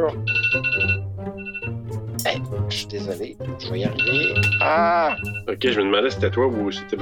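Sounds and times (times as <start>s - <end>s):
speech: 0.0s - 1.6s, 2.3s - 7.0s
phone ringing with a bright warbling electronic tone: 0.2s - 1.8s, 3.8s - 5.6s.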